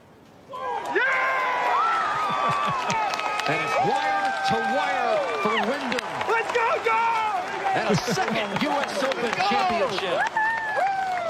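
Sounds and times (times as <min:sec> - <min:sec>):
golf crowd cheering: 0:00.5 - 0:11.2
laughter: 0:01.8 - 0:03.9, 0:07.6 - 0:10.3
speech: 0:02.7 - 0:10.5.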